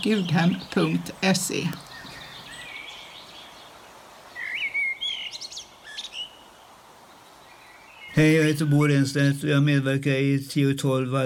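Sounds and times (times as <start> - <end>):
speech: 0.0 - 1.9, 8.2 - 11.2
bird song with whistled chirps and trilling phrases: 0.0 - 8.6
soft outdoor hiss: 0.0 - 11.2.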